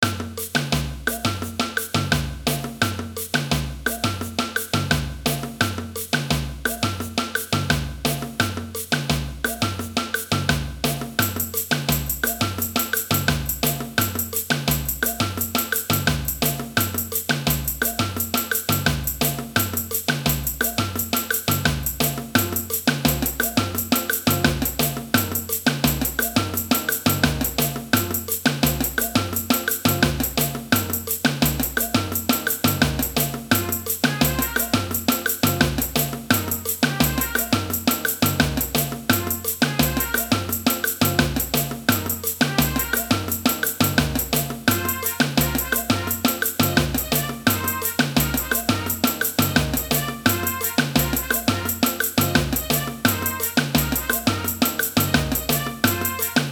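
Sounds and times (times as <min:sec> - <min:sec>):
samba band playing mambo: 0:00.0 - 0:56.5.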